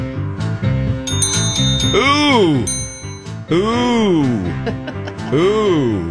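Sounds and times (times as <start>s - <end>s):
bell rung by a contestant in a song-guessing game: 1.1s - 3.6s
speech: 1.9s - 2.8s, 3.5s - 6.0s.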